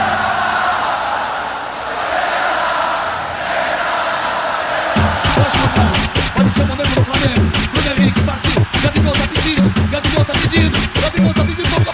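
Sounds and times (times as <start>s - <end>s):
large football stadium crowd roaring and chanting: 0.0s - 11.9s
speech: 5.4s - 11.9s.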